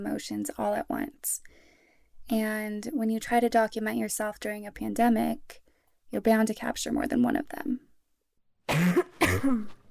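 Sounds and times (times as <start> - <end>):
speech: 0.0 - 1.5, 2.3 - 7.9, 8.7 - 9.8
harsh throaty coughs: 8.7 - 9.8.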